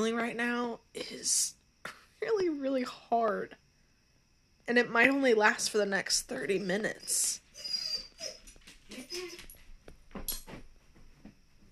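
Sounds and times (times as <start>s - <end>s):
speech: 0.0s - 3.6s, 4.7s - 7.4s, 8.2s - 9.5s
dog whining: 7.4s - 9.6s.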